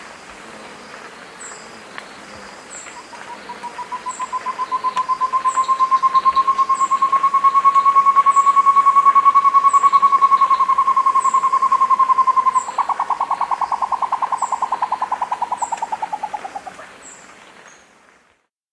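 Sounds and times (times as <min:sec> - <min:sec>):
faint high chirps: 0:02.8 - 0:16.5
short-tailed antthrush song in South America: 0:03.1 - 0:16.8.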